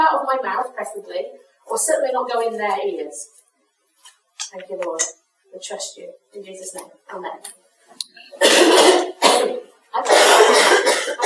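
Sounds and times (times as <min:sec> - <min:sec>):
speech: 0:00.2 - 0:03.4, 0:04.5 - 0:11.2
harsh coughs: 0:08.4 - 0:11.2.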